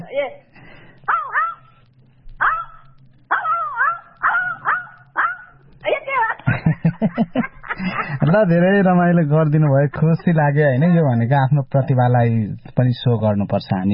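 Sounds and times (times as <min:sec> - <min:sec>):
speech: 0:00.2 - 0:00.5, 0:07.0 - 0:07.5, 0:08.3 - 0:13.9
person imitating a dog barking: 0:01.1 - 0:01.7, 0:02.4 - 0:06.4
laughter: 0:06.1 - 0:11.0.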